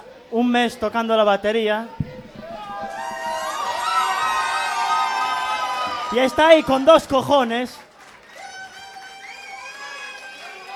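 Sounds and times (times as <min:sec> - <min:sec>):
speech: 0:00.3 - 0:02.0, 0:06.1 - 0:07.9
crowd cheering, whooping and shouting at an evening live music show: 0:02.4 - 0:07.3, 0:08.2 - 0:10.7.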